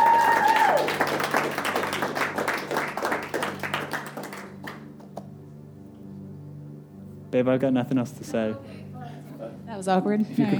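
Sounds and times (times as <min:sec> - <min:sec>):
audience clapping: 0:00.0 - 0:05.3
speech: 0:07.3 - 0:08.8, 0:09.8 - 0:10.5.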